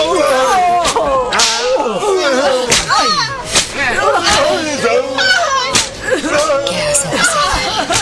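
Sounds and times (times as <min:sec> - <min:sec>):
crowd crying and shouting at a penitent procession: 0:00.0 - 0:08.0
laughter: 0:00.0 - 0:08.0
whip cracks from flagellants at a penitent procession: 0:00.8 - 0:01.7, 0:02.7 - 0:02.9, 0:03.5 - 0:03.8.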